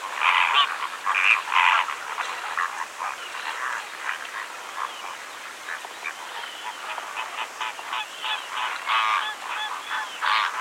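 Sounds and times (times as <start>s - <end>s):
Greater flamingo flock giving nasal goose-like honks: 0.0s - 10.5s.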